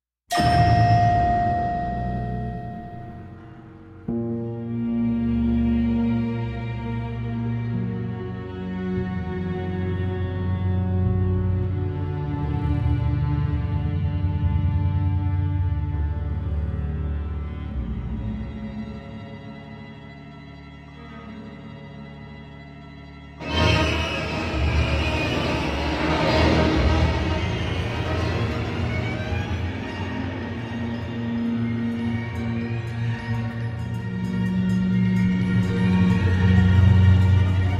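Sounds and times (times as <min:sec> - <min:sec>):
scary instrumental music: 0:00.3 - 0:37.7.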